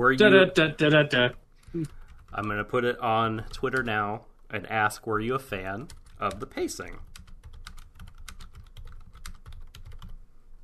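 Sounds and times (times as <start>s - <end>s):
speech: 0.0s - 7.1s
rapid intense typing on a computer keyboard: 1.9s - 2.7s, 3.4s - 4.0s, 5.7s - 10.2s.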